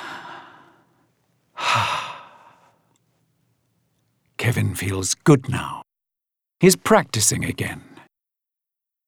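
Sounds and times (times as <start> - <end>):
long breathy yawns: 1.6 - 2.7
speech: 4.5 - 5.8, 6.6 - 7.9.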